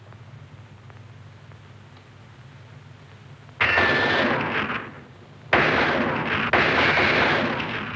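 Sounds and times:
gunshots at a military target-shooting session: 3.6 - 7.9.

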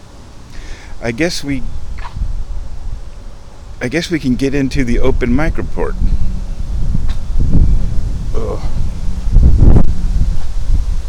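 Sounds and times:
wind buffeting a microphone outdoors: 0.6 - 11.0
speech: 1.0 - 1.8, 3.8 - 6.0, 8.4 - 8.8.

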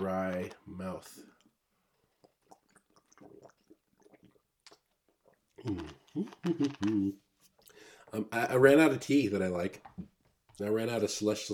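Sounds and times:
speech: 0.0 - 1.3, 5.6 - 7.2, 8.1 - 11.5
gulping swallows of water: 1.3 - 7.2
person sipping and slurping water: 1.3 - 7.7.

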